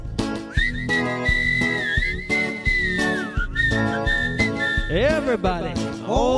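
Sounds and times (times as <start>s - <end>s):
bouncy musical backing with steady beats: 0.0s - 6.3s
person whistling a bright wavering melody like a walrus: 0.5s - 5.4s
speech: 4.9s - 6.3s.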